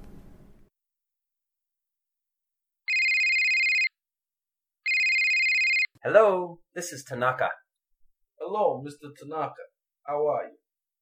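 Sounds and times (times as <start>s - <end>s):
telephone ringing in sustained electronic bursts: 2.9s - 3.9s, 4.9s - 5.9s
speech: 6.0s - 7.6s, 8.5s - 10.6s.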